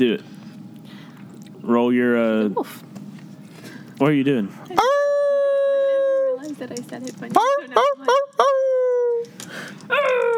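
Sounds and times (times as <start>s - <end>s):
speech: 0.0s - 0.3s, 1.6s - 2.9s, 4.0s - 5.0s, 6.4s - 8.6s
people imitating a dog howling: 4.8s - 6.6s, 7.3s - 10.3s.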